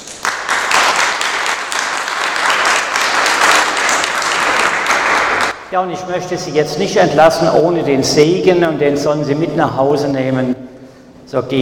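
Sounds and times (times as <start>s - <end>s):
audience applauding: 0.0s - 5.6s
speech: 5.7s - 10.6s, 11.3s - 11.6s.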